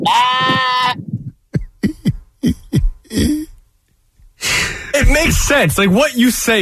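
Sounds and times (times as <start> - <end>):
person imitating a sheep bleat: 0.0 - 3.5
short choppy vocal bursts: 0.0 - 3.6, 4.4 - 5.7
speech: 5.2 - 6.6.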